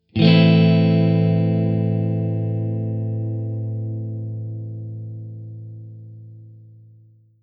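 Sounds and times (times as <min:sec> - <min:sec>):
A minor triad chord: 0:00.1 - 0:07.0.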